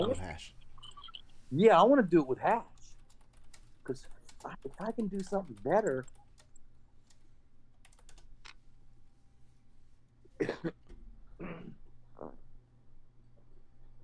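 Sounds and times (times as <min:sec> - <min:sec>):
faint low hum: 0:00.0 - 0:14.0
speech: 0:00.1 - 0:00.6, 0:01.5 - 0:02.7, 0:03.9 - 0:06.2, 0:10.4 - 0:10.8
typing on a computer keyboard: 0:02.8 - 0:08.6.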